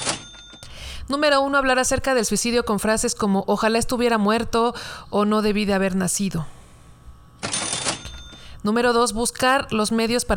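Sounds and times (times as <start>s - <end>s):
cash register sound effect: 0.0s - 0.7s, 7.4s - 8.5s
speech: 1.1s - 6.6s, 8.6s - 10.3s.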